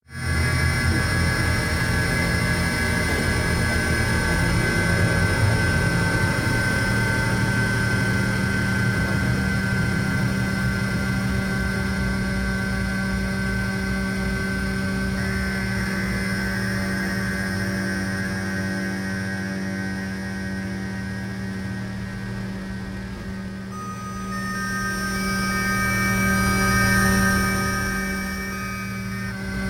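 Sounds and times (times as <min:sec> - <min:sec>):
drone tone: 0:00.1 - 0:29.6
bell ringing: 0:23.7 - 0:29.6.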